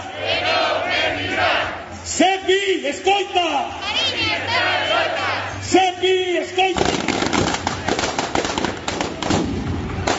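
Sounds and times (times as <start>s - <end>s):
crowd voices at a labour protest against job cuts: 0.0s - 2.5s, 3.7s - 10.1s
speech: 2.2s - 3.9s
firecrackers set off inside a prop cake at a labour protest: 6.8s - 10.1s.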